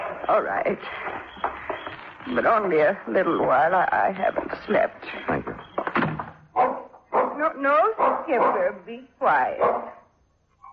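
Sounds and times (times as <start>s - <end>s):
speech: 0.3s - 1.5s, 2.2s - 5.4s, 7.5s - 10.0s
old dog barking: 6.6s - 10.1s.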